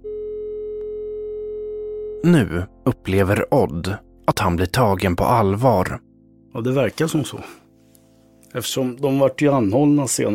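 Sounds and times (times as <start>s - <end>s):
telephone ringing tone: 0.0s - 2.2s
speech: 2.2s - 7.6s, 8.5s - 10.3s.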